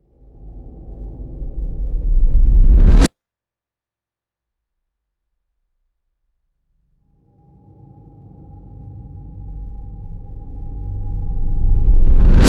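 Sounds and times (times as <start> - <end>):
low pitched reversed reverberant airy whooshes: 0.4 - 3.1, 10.4 - 12.4.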